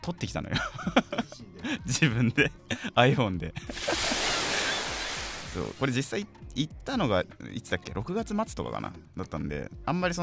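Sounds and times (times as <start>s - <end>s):
speech: 0.0s - 4.2s, 5.5s - 10.2s
laughter: 0.5s - 5.0s
ocean waves washing at the shore: 3.7s - 5.8s.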